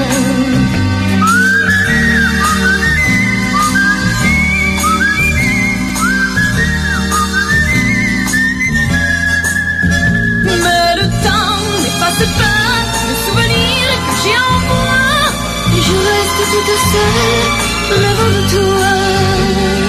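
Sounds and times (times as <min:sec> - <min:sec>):
instrumental accompaniment: 0:00.0 - 0:19.8
person whistling a tune: 0:01.2 - 0:11.1.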